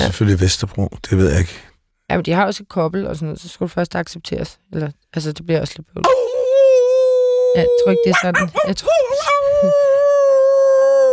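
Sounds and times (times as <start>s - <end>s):
speech: 0.0s - 6.4s, 7.6s - 10.0s
human voice imitating a wolf howling: 6.0s - 11.1s.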